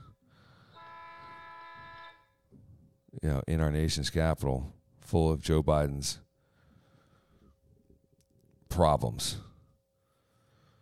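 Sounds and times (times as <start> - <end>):
bus horn honking: 0.7 - 2.4
speech: 3.2 - 6.2, 8.8 - 9.5.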